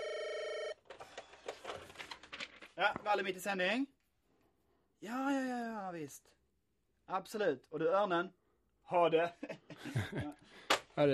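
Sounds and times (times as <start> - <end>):
telephone ringing with a bright buzzing bell tone: 0.0 - 0.9
speech: 2.8 - 4.0, 5.0 - 6.4, 7.1 - 11.1.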